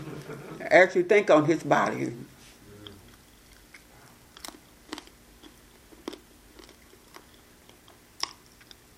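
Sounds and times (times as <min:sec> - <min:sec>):
speech: 0:00.3 - 0:02.3
chewing a big piece of communion bread: 0:02.8 - 0:08.9.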